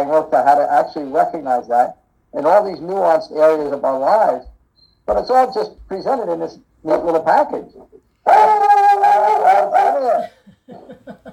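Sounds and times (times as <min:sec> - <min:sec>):
speech: 0:00.1 - 0:04.5, 0:05.1 - 0:08.7
dog howling bark: 0:08.2 - 0:10.4.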